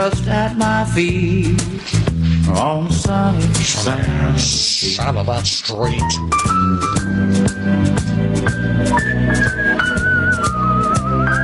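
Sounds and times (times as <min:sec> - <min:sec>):
speech: 0:00.0 - 0:07.8, 0:08.4 - 0:09.6
song with steady drums and bass: 0:00.0 - 0:11.4
person whistling a wavering melody: 0:08.9 - 0:11.4.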